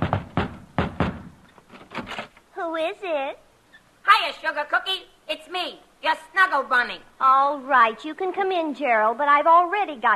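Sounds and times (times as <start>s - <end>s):
knocking on a wooden front door of a house: 0.0s - 1.4s
speech: 2.6s - 3.5s, 4.2s - 10.1s.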